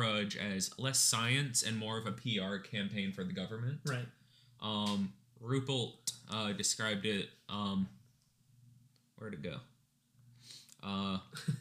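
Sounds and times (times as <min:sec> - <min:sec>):
speech: 0:00.2 - 0:08.0, 0:09.2 - 0:09.7, 0:10.8 - 0:11.5
nasal sniff: 0:10.4 - 0:10.8.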